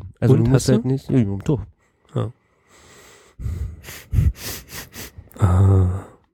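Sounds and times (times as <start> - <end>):
speech: 0.2 - 2.4, 3.4 - 4.6, 5.4 - 6.1
deep breath through cleared airways: 1.8 - 6.3.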